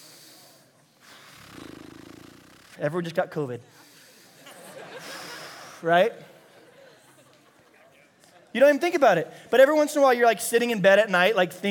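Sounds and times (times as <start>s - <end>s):
person breathing deliberately and audibly: 0.0s - 1.9s, 3.7s - 5.8s
speech: 2.8s - 3.9s, 5.8s - 6.3s, 8.5s - 11.7s
laughter: 4.3s - 8.4s.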